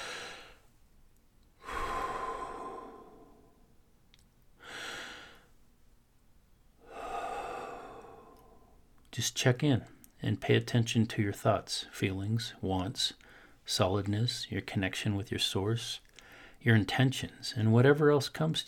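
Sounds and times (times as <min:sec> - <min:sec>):
slow deep breaths during a relaxation exercise: 0:00.0 - 0:00.7, 0:01.6 - 0:03.8, 0:04.6 - 0:05.6, 0:06.8 - 0:09.0, 0:13.2 - 0:13.7, 0:16.1 - 0:16.6
speech: 0:09.2 - 0:18.6.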